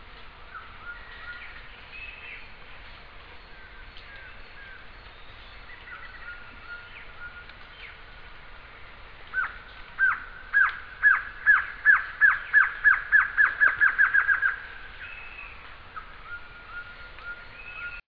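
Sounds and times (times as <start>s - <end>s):
Glossy antshrike Sakesphorus luctuosus calling bright notes and thin whistles: 3.4s - 8.0s, 9.3s - 18.0s.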